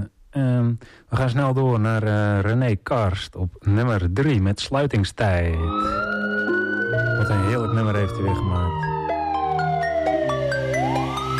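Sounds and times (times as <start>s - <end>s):
speech: 0.4s - 6.1s, 7.2s - 9.0s
police siren wailing: 5.6s - 11.3s.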